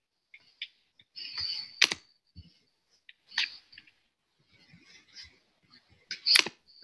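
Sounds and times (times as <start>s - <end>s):
computer mouse clicks: 1.4s - 2.0s.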